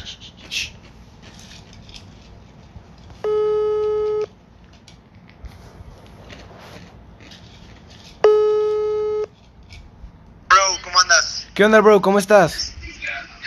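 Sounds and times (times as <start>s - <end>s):
phone ringback tone while a call waits to be answered: 3.2s - 4.3s, 8.2s - 9.3s
speech: 11.6s - 12.6s.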